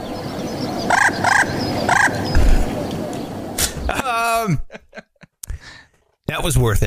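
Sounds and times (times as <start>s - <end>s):
messenger pigeon calls: 0.1s - 3.9s
laughter: 3.6s - 5.5s
speech: 6.4s - 6.8s.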